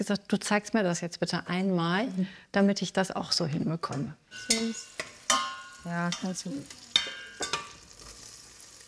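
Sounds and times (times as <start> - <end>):
speech: 0.0 - 5.1, 5.8 - 6.8
spoon scraping and clinking in a pot stirring vegetables into bulgur: 4.3 - 7.8.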